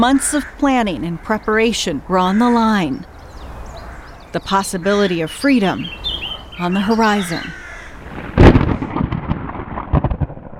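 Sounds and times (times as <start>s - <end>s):
speech: 0.0s - 3.1s, 4.3s - 6.0s, 6.6s - 7.6s
rolling thunder in a thunderstorm: 7.6s - 10.5s.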